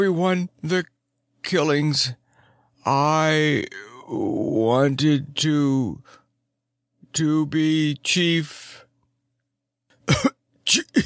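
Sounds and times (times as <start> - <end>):
speech: 0.0 - 2.2, 2.8 - 6.2, 7.1 - 8.8, 10.1 - 11.0
man performing a dying man's harsh cough: 9.9 - 11.0.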